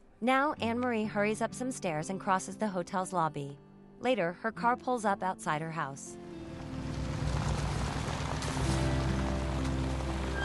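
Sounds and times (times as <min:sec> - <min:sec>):
speech: 0:00.2 - 0:06.3
sustained music tones: 0:06.2 - 0:10.4
rain falling outside a house: 0:06.3 - 0:10.4.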